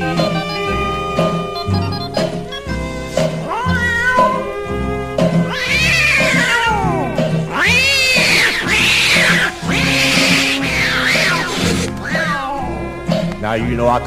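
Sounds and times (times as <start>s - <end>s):
steady rhythmic musical backing: 0.0s - 14.0s
old tomcat caterwauling starting a fight: 3.4s - 13.1s
speech: 13.6s - 14.0s.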